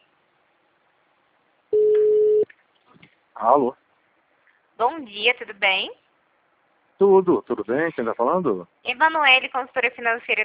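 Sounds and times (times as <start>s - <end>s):
telephone ringback tone as a call is placed: 1.8s - 2.4s
speech: 3.4s - 3.8s, 4.8s - 6.0s, 7.0s - 10.4s.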